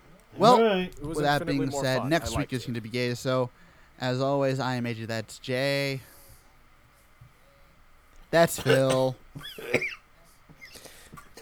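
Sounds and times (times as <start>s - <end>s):
speech: 0.4s - 6.1s, 8.3s - 10.0s
person coughing: 8.6s - 10.0s.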